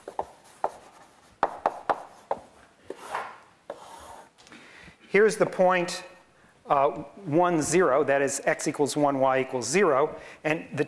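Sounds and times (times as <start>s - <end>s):
marker or chalk sketching a graph on a board: 0.0s - 4.3s
speech: 5.1s - 6.1s, 6.7s - 10.8s.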